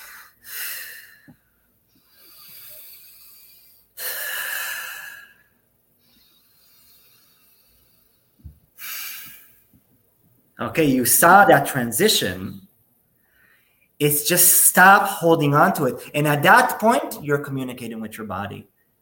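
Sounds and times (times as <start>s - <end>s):
slow deep breathing during a relaxation exercise: 0.0s - 9.7s, 13.2s - 13.9s
speech: 10.6s - 12.7s, 14.0s - 18.7s.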